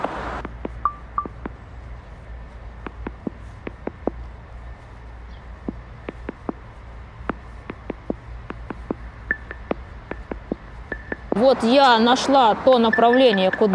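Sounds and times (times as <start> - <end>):
low hum: 0.0 - 13.7
brief higher beeps from a navigation app: 0.8 - 1.5, 9.3 - 11.4, 12.8 - 13.7
navigation app directional ticks on a rotating phone: 9.3 - 11.4, 12.9 - 13.7
speech: 11.4 - 13.7.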